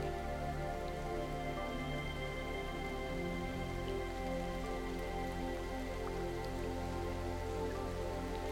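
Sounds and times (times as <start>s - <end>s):
raindrops pattering on a surface: 0.0s - 8.5s.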